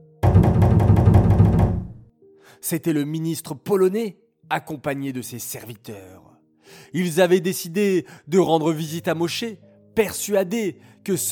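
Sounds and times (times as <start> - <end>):
knocking on a wooden door: 0.2 - 2.1
speech: 2.7 - 11.3.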